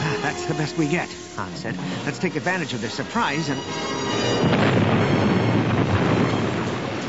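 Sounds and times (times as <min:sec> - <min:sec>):
speech: 0:00.3 - 0:05.2
massive spaceship explosion roar and deep rumble: 0:04.1 - 0:07.0.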